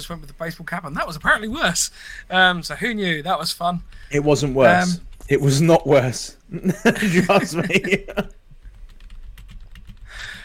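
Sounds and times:
speech: 0.0 - 8.4
low hum: 0.0 - 10.4
laughter: 6.5 - 8.4
computer keyboard typing: 8.1 - 10.4.

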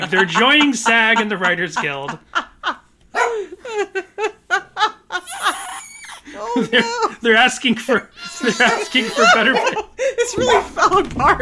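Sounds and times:
speech: 0.0 - 2.5, 6.5 - 11.4
laughter: 0.0 - 11.4
female dog barking: 3.1 - 3.5, 10.4 - 10.8.

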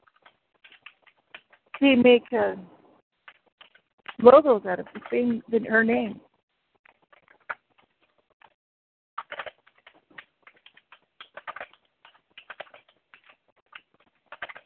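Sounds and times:
fast typing on a computer keyboard: 0.0 - 1.9, 3.2 - 5.5, 7.0 - 7.9, 9.2 - 14.6
speech: 1.8 - 2.7, 4.2 - 6.3.

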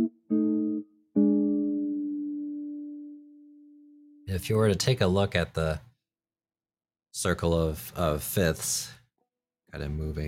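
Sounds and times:
keyboard playing sustained B flat 7 chord tones: 0.0 - 4.2
speech: 4.3 - 5.9, 7.2 - 9.0, 9.7 - 10.2.

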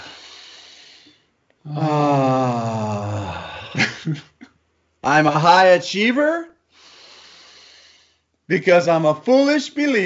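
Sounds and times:
deep breath taken to clear the mind: 0.0 - 3.8, 6.7 - 8.4
speech: 1.7 - 2.0, 4.1 - 4.3, 5.0 - 6.5, 8.5 - 10.0.

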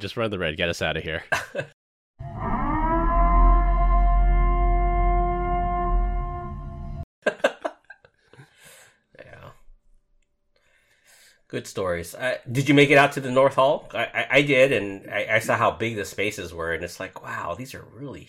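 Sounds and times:
speech: 0.0 - 2.5, 11.5 - 18.2
wailing civil defense siren: 2.2 - 7.0.

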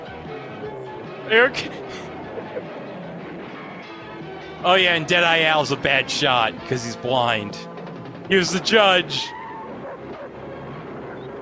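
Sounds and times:
speech: 1.3 - 2.1, 4.6 - 7.7, 8.3 - 9.4
dog barking and yipping: 9.3 - 11.4.

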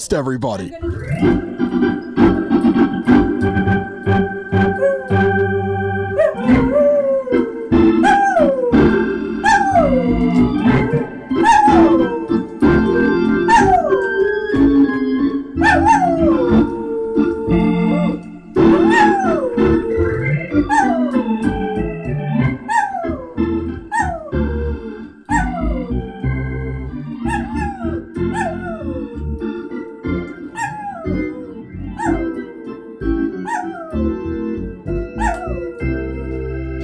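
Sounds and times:
speech: 0.0 - 2.0
organ-like music: 0.0 - 36.8
dog howling: 4.7 - 5.4, 6.1 - 14.6, 15.6 - 22.0, 22.6 - 26.1, 27.2 - 32.5, 33.4 - 34.1, 35.2 - 35.8.

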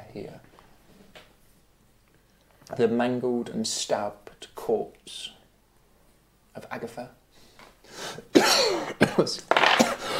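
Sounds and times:
speech: 0.2 - 0.5, 2.8 - 5.4, 6.6 - 7.2, 7.9 - 9.9
person coughing roughly: 8.3 - 10.1.

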